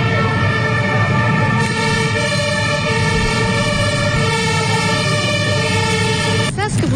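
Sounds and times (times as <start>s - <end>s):
deep engine rumble of military armoured vehicles: 0.0s - 6.9s
sirens of military armoured vehicles and gendarmerie near a street demonstration: 0.0s - 6.9s.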